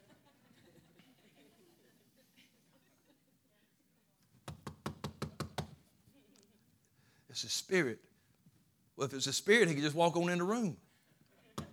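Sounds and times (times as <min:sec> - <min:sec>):
loud sharp knocks on a door: 0:04.5 - 0:05.7, 0:11.6 - 0:11.7
speech: 0:07.4 - 0:08.1, 0:09.0 - 0:10.8.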